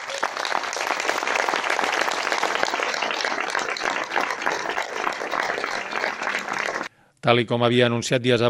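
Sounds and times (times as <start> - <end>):
crowd applauding: 0.0 - 6.9
speech: 7.2 - 8.4.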